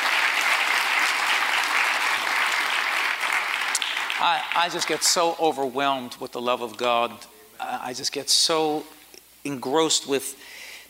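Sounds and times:
audience applause: 0.0s - 5.4s
speech: 4.2s - 10.5s.

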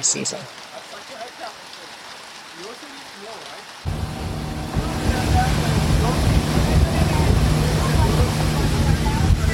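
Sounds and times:
speech: 0.0s - 0.8s, 2.6s - 4.0s
rushing wash of wind and water beneath a motorboat: 0.0s - 9.5s
motorboat engine droning on a canal: 3.9s - 9.5s.

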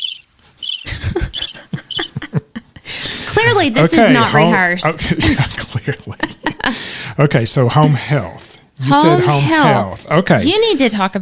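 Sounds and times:
cricket chirping in buzzy trills: 0.0s - 2.5s
laughter: 0.9s - 6.9s
speech: 3.4s - 11.2s.

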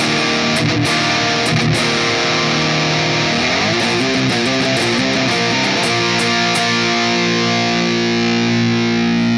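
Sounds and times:
heavily overdriven electric guitar through an effects pedal: 0.0s - 9.3s.

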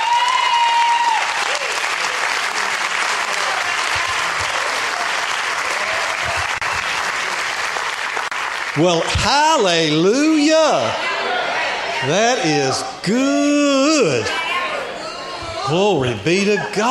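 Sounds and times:
audience at a church service applauding: 0.0s - 9.7s
speech: 8.8s - 11.1s, 12.0s - 14.4s, 15.7s - 16.8s.

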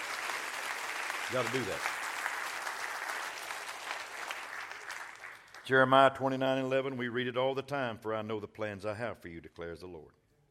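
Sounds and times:
congregation clapping their hands together: 0.0s - 6.2s
speech: 1.3s - 2.0s, 5.7s - 10.2s.

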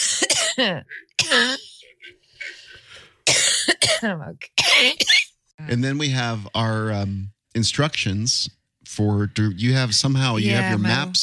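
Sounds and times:
sick person coughing: 0.0s - 2.1s, 3.3s - 5.3s
speech: 0.6s - 2.2s, 4.0s - 11.2s
throaty rasp: 0.8s - 3.3s.

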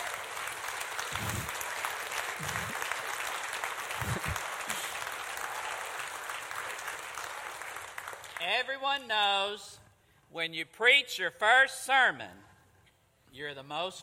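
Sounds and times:
standing church audience applauding: 0.0s - 8.4s
speech: 2.4s - 2.8s, 8.6s - 12.4s, 13.4s - 14.0s.

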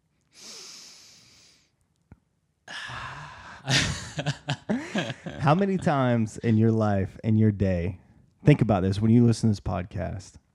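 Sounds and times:
person taking a deep calming breath: 0.3s - 1.7s, 2.7s - 5.4s
laughter: 2.9s - 6.7s
speech: 3.6s - 4.5s, 5.5s - 10.4s.

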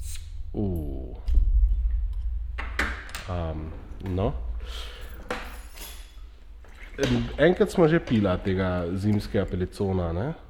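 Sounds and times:
steady low rumble: 0.0s - 6.6s
speech: 0.6s - 0.8s, 3.3s - 4.9s, 7.0s - 10.4s
set of keys with a bottle opener jangling: 4.9s - 6.9s.

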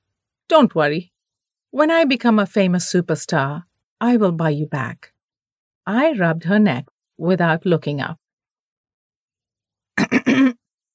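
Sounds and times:
speech: 0.5s - 1.1s, 1.7s - 5.1s, 5.8s - 8.2s, 10.0s - 10.6s
old man clearing his throat: 10.0s - 10.6s.

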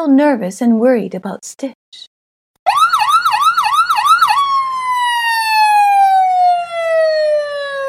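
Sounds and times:
speech: 0.0s - 2.1s
ambulance siren at a night-time accident scene: 2.7s - 7.8s.

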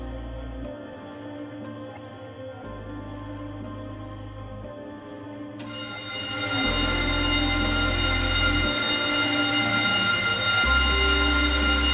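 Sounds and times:
fire station alarm bells ringing: 5.6s - 11.9s.

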